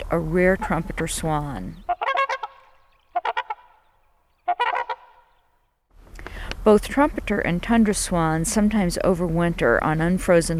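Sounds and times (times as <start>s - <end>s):
speech: 0.1s - 1.8s, 6.6s - 10.5s
Canada geese honking: 0.4s - 5.6s.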